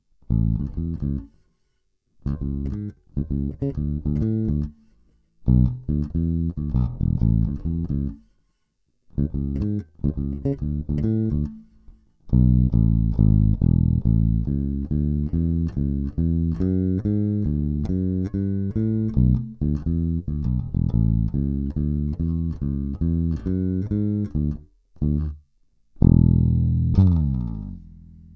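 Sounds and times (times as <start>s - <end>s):
bass guitar with copper white nylon strings: 0.2s - 1.4s, 2.2s - 8.3s, 9.1s - 28.3s.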